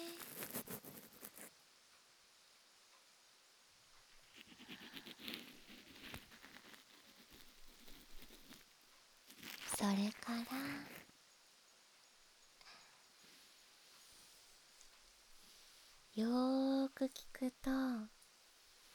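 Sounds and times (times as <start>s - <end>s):
faint crackly drops: 4.4s - 11.1s
soft rain pattering: 9.6s - 11.0s
speech: 9.8s - 11.0s, 16.2s - 18.2s.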